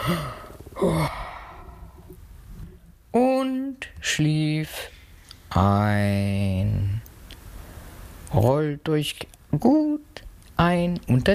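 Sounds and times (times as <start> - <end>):
speech: 0.0 - 1.2, 3.1 - 4.9, 5.5 - 7.0, 8.3 - 11.3
person performing a long voiced breathy yawn: 0.0 - 2.1.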